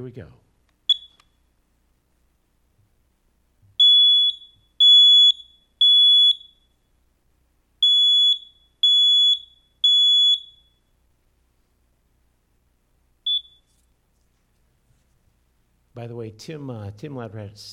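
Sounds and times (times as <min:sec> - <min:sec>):
speech: 0:00.0 - 0:00.5, 0:16.0 - 0:17.7
loud shrill smoke detector alarm beeping: 0:00.9 - 0:01.4, 0:03.8 - 0:06.8, 0:07.8 - 0:10.9, 0:13.2 - 0:13.7.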